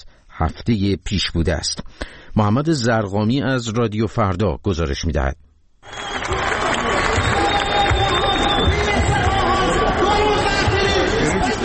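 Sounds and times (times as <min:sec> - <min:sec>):
speech: 0:00.4 - 0:06.0
crowd of protesting citizens on the dry riverbed of the Zayandeh Rud in Isfahan: 0:06.0 - 0:11.6.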